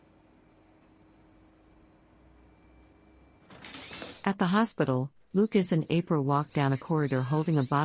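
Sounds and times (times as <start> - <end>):
bar door opening as a woman walks through: 3.4 - 4.3
speech: 4.2 - 7.8.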